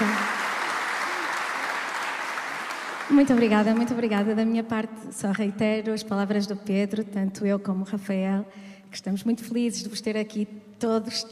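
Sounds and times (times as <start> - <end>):
audience applause at a presentation: 0.0 - 4.1
speech: 3.1 - 11.2.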